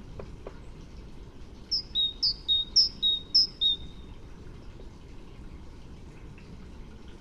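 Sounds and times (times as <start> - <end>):
faint background hiss: 0.0 - 7.1
great tit singing a two-part teacher phrase: 1.7 - 4.0.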